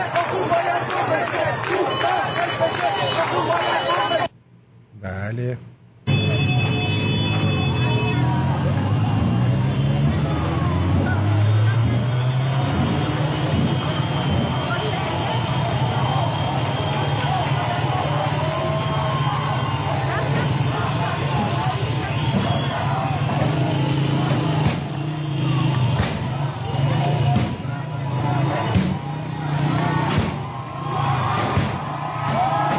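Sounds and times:
crowd roar: 0.0 - 4.3, 6.4 - 32.7
street noise: 0.0 - 32.7
speech: 5.3 - 5.8
people striking a police car: 12.8 - 14.8, 20.2 - 25.0, 25.8 - 27.8, 28.6 - 29.1, 30.0 - 30.5, 31.3 - 32.7.

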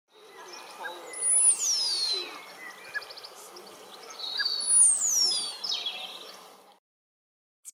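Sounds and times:
sandpiper high whistled calls: 0.3 - 6.4.

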